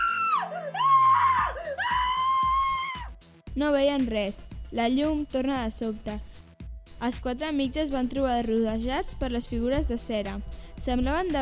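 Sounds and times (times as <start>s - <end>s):
woman screaming in fright: 0.0s - 3.1s
speech: 3.6s - 6.3s, 7.0s - 11.3s.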